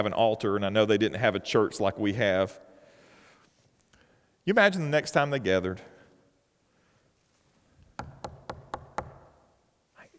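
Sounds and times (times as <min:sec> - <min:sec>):
speech: 0:00.0 - 0:02.7, 0:04.5 - 0:05.9
firm knocking on a door: 0:08.0 - 0:09.3.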